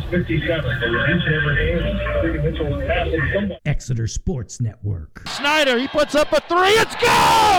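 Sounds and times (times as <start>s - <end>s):
crowd noise on a low-fidelity AM radio broadcast: 0.0s - 3.6s, 5.3s - 7.5s
speech: 0.1s - 7.5s.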